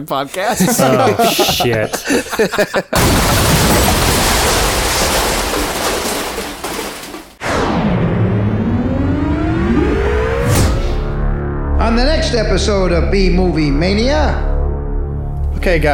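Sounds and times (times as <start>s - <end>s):
speech: 0.0s - 3.9s, 11.9s - 14.5s, 15.6s - 15.9s
laughter: 0.3s - 3.3s
massive explosion with lingering rumble: 3.0s - 11.9s.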